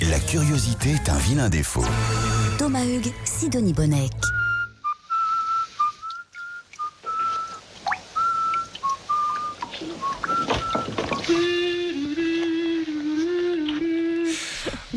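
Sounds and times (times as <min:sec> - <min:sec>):
speech: 0:00.2 - 0:04.4
man whistling a cheerful wandering tune: 0:04.3 - 0:07.6, 0:08.2 - 0:14.9
man humming a melody in a low voice: 0:11.2 - 0:14.9.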